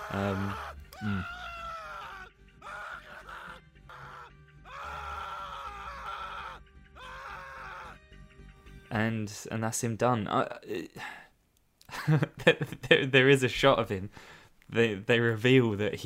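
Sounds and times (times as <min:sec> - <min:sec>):
man groaning while clawed by a creature: 0:00.0 - 0:08.0
man screaming in agony in a film death scene: 0:00.0 - 0:08.0
speech: 0:00.1 - 0:01.4, 0:08.9 - 0:11.2, 0:12.0 - 0:16.0.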